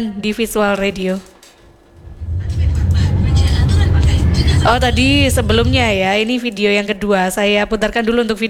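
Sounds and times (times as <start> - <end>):
speech: 0.0 - 1.3, 4.6 - 8.4
broad hiss of passing vehicles: 1.6 - 6.2
steady loud low rumble of engines in a traffic jam: 1.6 - 6.2.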